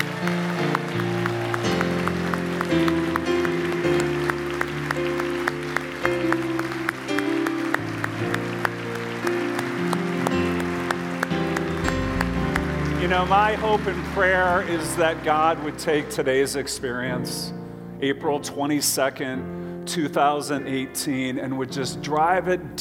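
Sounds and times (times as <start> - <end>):
large congregation applauding: 0.0 - 16.6
music playing: 0.0 - 19.3
speech: 13.2 - 22.7.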